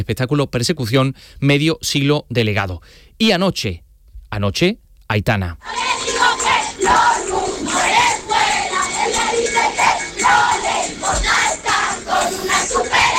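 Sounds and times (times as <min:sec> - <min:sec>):
speech: 0:00.0 - 0:05.9
concert crowd of about 20,000 singing along with a pop singer at a festival in Seville: 0:05.6 - 0:13.1.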